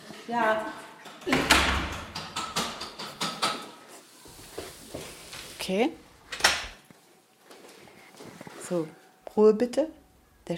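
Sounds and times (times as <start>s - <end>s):
speech: 0.3s - 1.8s, 5.6s - 6.1s, 8.7s - 10.5s
door settling with lighter knocks and rattling clicks: 1.2s - 3.6s
door pushed shut with a solid thump: 1.3s - 2.8s.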